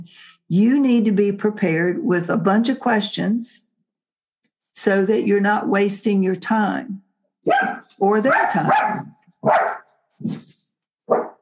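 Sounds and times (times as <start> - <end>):
speech: 0.0 - 3.7, 4.8 - 11.3
dog barking: 7.4 - 10.0, 11.1 - 11.3.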